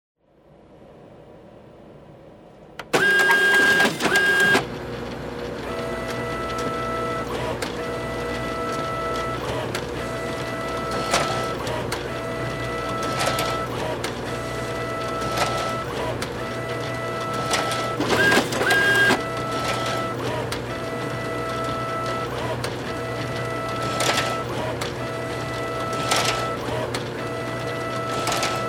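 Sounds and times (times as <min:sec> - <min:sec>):
printer scanning sequence: 0:02.8 - 0:28.6.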